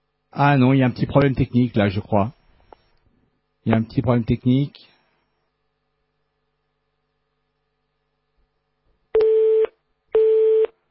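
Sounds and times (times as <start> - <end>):
speech: 0.3 - 2.4, 3.6 - 4.9
telephone busy tone after a call is hung up: 9.2 - 10.7.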